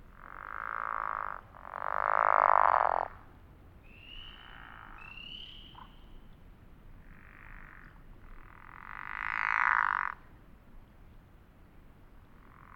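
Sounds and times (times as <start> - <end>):
several pickerel frogs snoring at Elliott Mountain: 0.1 - 3.3, 4.4 - 5.1, 7.0 - 10.2, 12.4 - 12.7.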